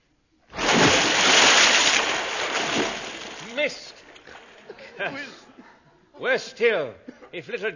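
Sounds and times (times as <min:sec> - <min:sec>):
something falling into water with a broad splash: 0:00.5 - 0:04.6
rushing wash of churning water: 0:00.6 - 0:03.8
speech: 0:03.6 - 0:03.9, 0:05.0 - 0:05.6, 0:06.2 - 0:07.7.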